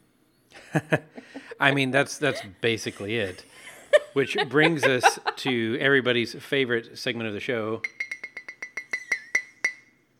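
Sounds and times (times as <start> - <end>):
laughter: 0.6 - 6.2
speech: 0.7 - 8.0
tea glass clinking: 7.8 - 9.9.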